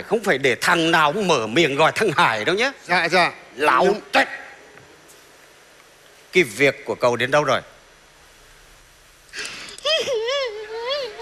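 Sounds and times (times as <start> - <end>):
speech: 0.0 - 4.4, 6.3 - 7.7
woman crying: 9.4 - 11.2.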